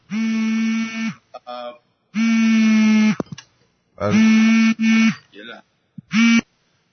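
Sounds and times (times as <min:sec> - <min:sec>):
mobile phone vibrating in buzzy bursts: 0:00.0 - 0:01.2, 0:02.2 - 0:03.2, 0:04.0 - 0:05.2, 0:06.0 - 0:06.5
speech: 0:04.0 - 0:04.5.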